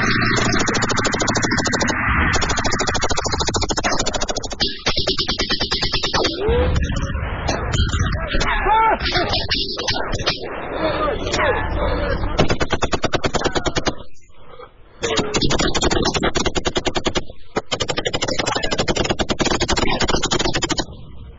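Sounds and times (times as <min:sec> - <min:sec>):
gunfire in a shootout between police and armed smugglers: 0:00.1 - 0:06.4, 0:12.4 - 0:14.1, 0:15.0 - 0:20.9
voices: 0:06.1 - 0:16.0, 0:18.2 - 0:19.0, 0:19.7 - 0:20.3.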